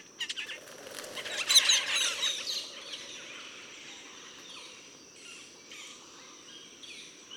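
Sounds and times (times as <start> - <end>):
Metallic starlings chirping and squeaking: 0.2 - 4.0
thin high-pitched whine: 0.2 - 5.3.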